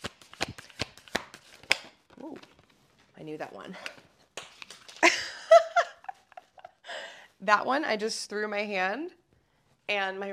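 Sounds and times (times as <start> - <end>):
tarot cards being shuffled: 0.0 - 3.1, 3.7 - 5.0
speech: 3.2 - 4.1, 7.4 - 9.2, 9.9 - 10.3.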